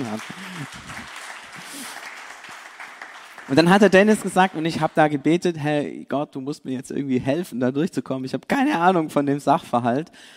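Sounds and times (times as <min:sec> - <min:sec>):
speech: 0:00.0 - 0:02.0, 0:03.5 - 0:10.3
audience clapping: 0:00.0 - 0:05.5.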